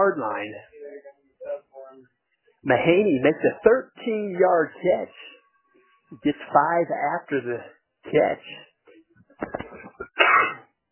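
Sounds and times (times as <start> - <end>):
speech: 0.0 - 0.8, 2.6 - 5.3, 6.1 - 8.7
football commentator sneezing: 10.2 - 10.6.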